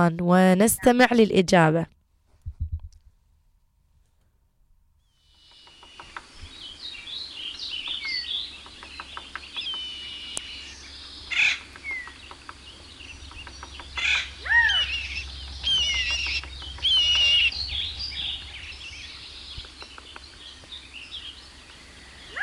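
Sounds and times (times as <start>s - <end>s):
speech: 0.0s - 2.0s
flock of birds chirping and twittering: 5.0s - 22.4s
birds' wings flapping: 5.4s - 6.5s, 11.3s - 22.4s
fluttering clicks: 5.4s - 6.5s, 11.6s - 20.8s
low rumbling background: 10.0s - 22.4s.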